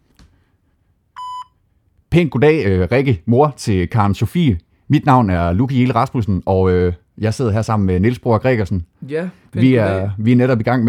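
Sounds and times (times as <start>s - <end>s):
electronic voicemail beep on a phone call: 1.2s - 1.6s
speech: 2.1s - 10.8s.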